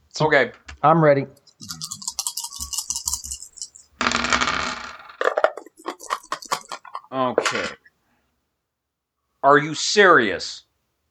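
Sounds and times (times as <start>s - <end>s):
speech: 0.2s - 1.9s, 7.1s - 7.8s, 9.4s - 10.7s
four dice clattering on a hard surface: 1.6s - 7.1s.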